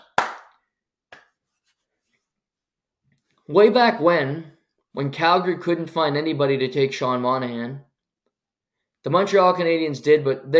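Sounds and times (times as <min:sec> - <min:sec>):
hand claps: 0:00.0 - 0:01.7
speech: 0:03.5 - 0:07.9, 0:09.0 - 0:10.5.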